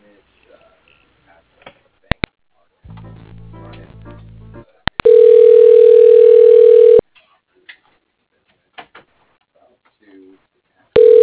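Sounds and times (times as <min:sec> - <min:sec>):
loud steady telephone line tone: 0:05.0 - 0:07.0, 0:11.0 - 0:11.2.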